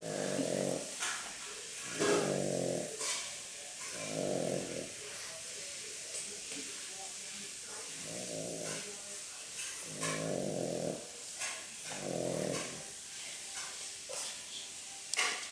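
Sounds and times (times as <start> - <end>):
Yorkshire Terrier growling: 0.0 - 1.1, 1.8 - 3.2, 3.8 - 5.1, 7.9 - 8.9, 9.8 - 11.1, 11.8 - 12.9
steady background hiss: 0.0 - 15.5.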